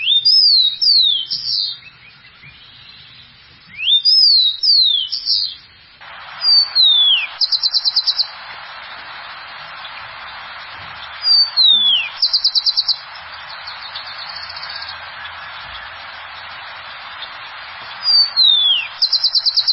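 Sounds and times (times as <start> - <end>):
rufous-collared sparrow song of slurred whistles ending in a trill: 0.0 - 3.1, 3.7 - 5.6, 6.6 - 8.3, 11.3 - 13.0, 18.1 - 19.7
steady hiss: 0.0 - 19.7.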